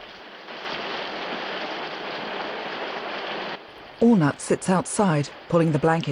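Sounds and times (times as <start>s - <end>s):
driving rain pelting on a roof: 0.0s - 6.1s
speech: 4.0s - 6.1s.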